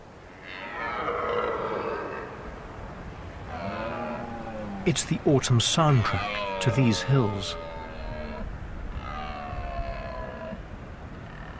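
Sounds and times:
wind: 0.0s - 11.5s
red deer stag roaring during the autumn rut in the highland glens: 0.4s - 2.5s, 3.5s - 5.0s, 6.0s - 10.6s
speech: 4.8s - 7.7s.

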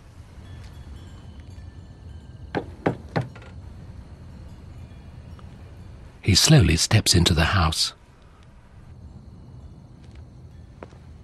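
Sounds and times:
faint hiss: 0.0s - 11.2s
knocking on a front door with an engraved flower glass pane: 2.6s - 3.5s
speech: 6.3s - 8.0s.

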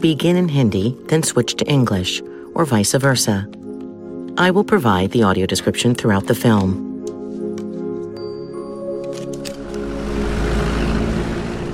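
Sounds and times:
speech: 0.0s - 3.6s, 4.4s - 6.9s
highway road and traffic noise: 9.3s - 11.7s
van engine drone driving on a highway: 9.5s - 11.7s.

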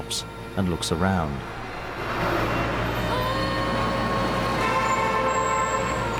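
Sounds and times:
dense fast-moving road traffic roaring on a main road: 0.0s - 6.1s
whining tones: 0.0s - 6.1s
speech: 0.1s - 1.6s.

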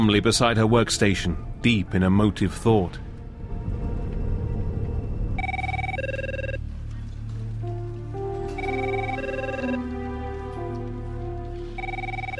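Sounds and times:
speech: 0.0s - 3.0s
steady low rumble: 1.4s - 8.4s
cell phone ringing with a repeating electronic melody: 5.4s - 6.6s, 8.6s - 9.9s, 11.8s - 12.3s.

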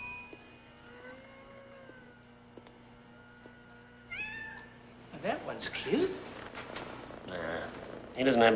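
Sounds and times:
caged kitten meowing at a city pound: 4.1s - 4.8s
speech: 5.5s - 6.3s, 8.2s - 8.5s.

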